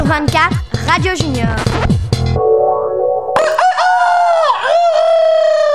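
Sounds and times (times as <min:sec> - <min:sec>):
speech: 0:00.1 - 0:02.6
rooster crowing in a farmyard: 0:03.4 - 0:05.7.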